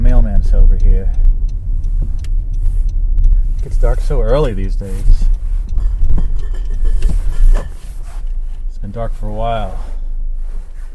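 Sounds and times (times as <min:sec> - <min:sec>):
car engine rumbling while pulling into a parking spot: 0:00.0 - 0:10.9
speech: 0:00.5 - 0:01.4, 0:03.8 - 0:05.4, 0:08.8 - 0:09.9
soft knocks and creaks of car rolling to a stop: 0:04.7 - 0:08.7.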